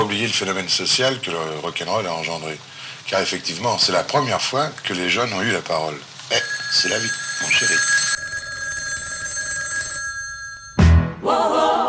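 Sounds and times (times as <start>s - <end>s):
speech: 0.1s - 8.2s
telephone ringing for a wake-up call: 6.3s - 11.1s.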